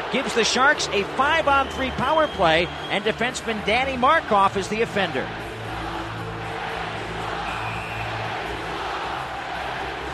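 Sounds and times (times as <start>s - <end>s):
large hockey arena crowd roaring at a penalty call: 0.0s - 4.0s, 5.1s - 10.1s
speech: 0.1s - 5.4s
indistinct shouting in a hockey arena crowd: 5.4s - 10.1s.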